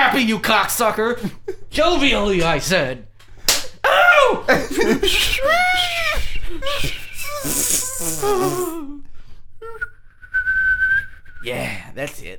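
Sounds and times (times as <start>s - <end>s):
speech: 0.2s - 3.1s, 3.9s - 9.0s, 11.4s - 12.3s
wavering laugh-like human vocal sounds: 4.5s - 9.0s
strained human whistle: 5.7s - 8.8s, 9.7s - 11.5s.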